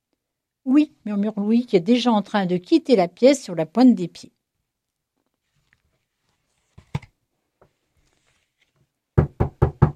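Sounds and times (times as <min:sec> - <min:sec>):
speech: 0:00.6 - 0:04.4
knocking on a door: 0:09.2 - 0:09.9.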